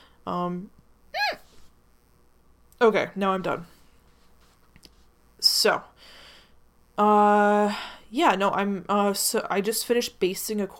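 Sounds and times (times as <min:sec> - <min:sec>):
speech: 0:00.2 - 0:00.8, 0:02.8 - 0:03.8, 0:05.6 - 0:06.2, 0:07.0 - 0:10.7
voiced hiccup: 0:01.2 - 0:01.5.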